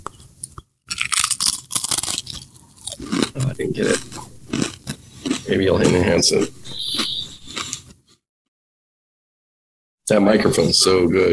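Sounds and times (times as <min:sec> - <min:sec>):
crunchy food being chewed: 0:00.0 - 0:08.2
speech: 0:03.6 - 0:04.2, 0:05.5 - 0:06.8, 0:10.1 - 0:11.3.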